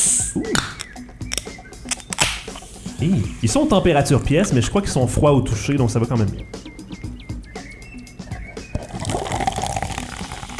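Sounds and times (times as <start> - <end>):
speech: 0.4 - 0.7, 3.0 - 6.6
clicks and taps opening a sparkling grapefruit rosé bottle: 0.4 - 2.6
sparkling grapefruit rosé fizzing as it is poured: 8.8 - 10.5.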